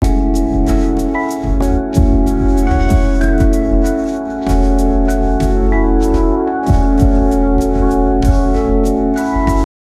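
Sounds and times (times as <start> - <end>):
lo-fi instrumental music: 0.0 - 9.7.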